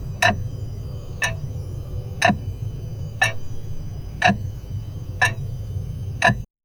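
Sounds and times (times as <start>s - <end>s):
grandfather clock ticking: 0.2s - 0.4s, 2.2s - 2.4s, 3.2s - 3.4s, 4.2s - 4.4s, 5.2s - 5.4s, 6.2s - 6.4s.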